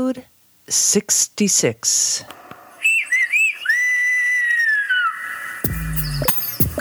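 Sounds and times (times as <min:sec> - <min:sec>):
speech: 0:00.0 - 0:02.4
Gomeran whistled language human whistling in speech-like phrases: 0:02.8 - 0:06.7.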